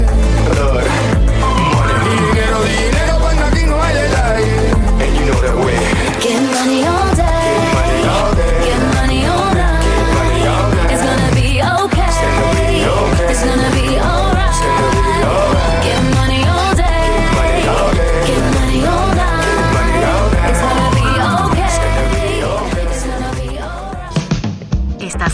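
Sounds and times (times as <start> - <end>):
upbeat pop song: 0.0 - 25.3.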